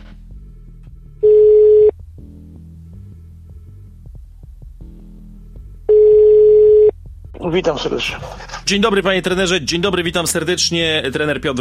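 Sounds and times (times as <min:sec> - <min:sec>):
low throbbing hum: 0:00.0 - 0:07.4
telephone line tone beeps as a radio programme dials a guest: 0:01.2 - 0:01.9, 0:05.9 - 0:06.9
speech: 0:07.4 - 0:11.5.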